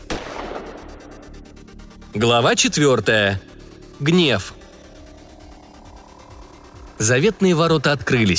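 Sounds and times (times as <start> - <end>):
gunshot with tail: 0.0 - 1.3
speech: 2.1 - 4.6, 7.0 - 8.3.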